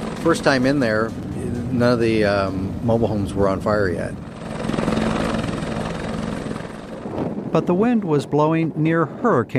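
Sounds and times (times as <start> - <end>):
helicopter flying overhead: 0.0 - 9.2
speech: 0.2 - 4.3, 7.6 - 9.5.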